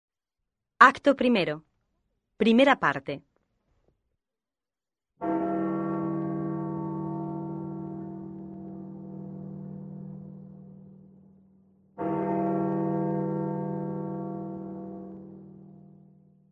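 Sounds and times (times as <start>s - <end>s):
speech: 0.8s - 1.7s, 2.4s - 3.3s
deep church bell tolling for a funeral: 5.2s - 16.5s.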